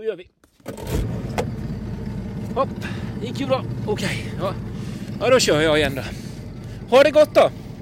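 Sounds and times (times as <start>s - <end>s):
speech: 0.0s - 1.1s, 2.6s - 6.2s, 6.9s - 7.6s
boat engine starting and running: 0.4s - 7.8s.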